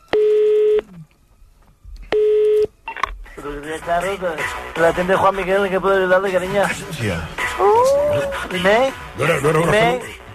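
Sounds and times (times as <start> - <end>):
long steady telephone dialing tones: 0.0 - 1.0, 2.1 - 3.1
speech: 3.4 - 10.2.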